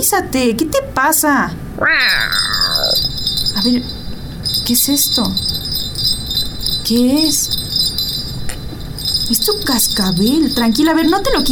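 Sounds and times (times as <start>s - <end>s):
speech: 0.0s - 2.6s, 3.6s - 4.0s, 4.7s - 5.7s, 6.9s - 7.6s, 9.3s - 11.5s
female cat meowing at night: 1.8s - 3.0s.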